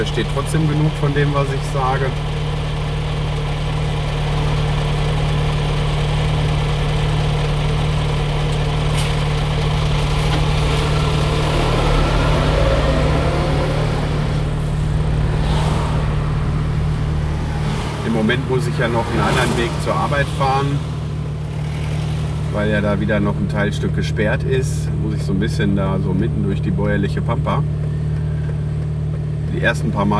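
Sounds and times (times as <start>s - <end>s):
speech: 0.0s - 2.4s, 18.2s - 21.0s, 22.6s - 27.8s, 29.6s - 30.1s
truck engine idling at a traffic light: 0.0s - 30.1s.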